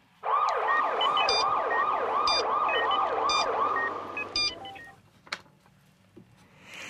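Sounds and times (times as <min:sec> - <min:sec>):
noise: 0:00.0 - 0:06.8
ambulance siren wailing in rising sweeps: 0:00.2 - 0:04.9
electronic beeps: 0:00.7 - 0:05.0.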